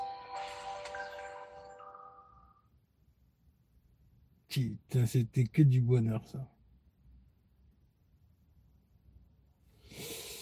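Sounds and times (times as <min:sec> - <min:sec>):
faint electronic startup jingle from an old smartphone being switched on: 0:00.0 - 0:02.6
speech: 0:04.5 - 0:06.6.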